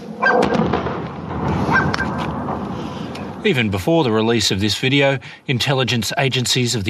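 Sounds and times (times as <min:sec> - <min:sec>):
noisy background: 0:00.0 - 0:06.8
air defence missile striking a Boeing 737-800 airliner near Tehran Airport: 0:00.4 - 0:03.8
speech: 0:03.4 - 0:06.8.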